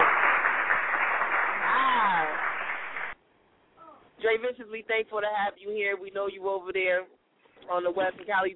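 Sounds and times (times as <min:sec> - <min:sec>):
round of clapping applause: 0:00.0 - 0:03.2
speech: 0:04.4 - 0:08.5.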